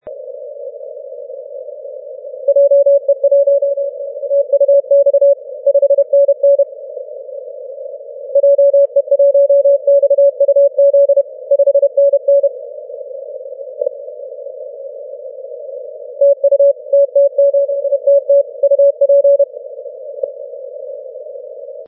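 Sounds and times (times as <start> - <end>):
morse code on the 10m radio band: 2.5 - 6.7, 8.3 - 12.5, 16.2 - 19.5.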